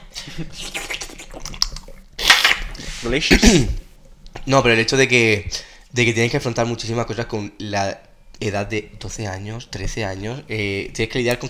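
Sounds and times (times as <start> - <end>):
speech: 0.3 - 0.8, 3.0 - 3.8, 4.5 - 11.4
sipping and gulping water: 0.3 - 4.2.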